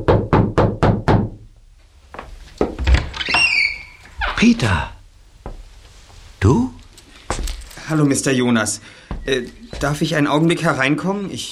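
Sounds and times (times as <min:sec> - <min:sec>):
firm knocking on a hotel room door: 0:00.0 - 0:01.4
heavy thuds: 0:00.0 - 0:03.2, 0:04.8 - 0:07.9, 0:09.0 - 0:10.2
rustling movement: 0:01.6 - 0:10.6
speech: 0:04.4 - 0:05.0, 0:06.4 - 0:06.7, 0:07.9 - 0:11.4.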